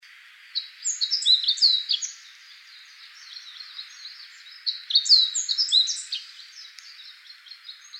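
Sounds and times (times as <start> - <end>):
faint background hiss: 0.0 - 7.9
meadow bunting singing high chirps and trills: 0.5 - 7.9.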